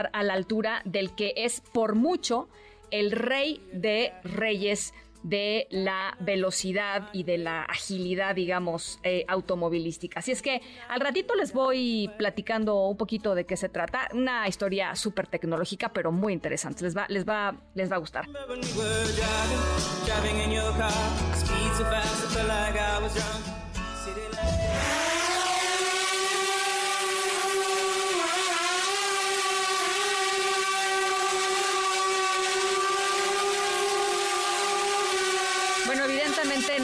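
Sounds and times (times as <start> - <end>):
speech: 0.0 - 23.6
short burst of music: 0.0 - 25.0, 35.9 - 36.8
modern drone whirring: 24.4 - 36.8.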